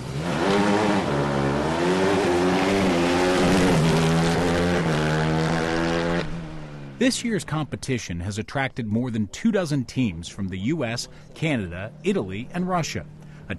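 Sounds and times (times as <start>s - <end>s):
open-wheeled Indy-style hybrid race car engine accelerating on gas: 0.0s - 7.0s
speech: 7.0s - 13.5s.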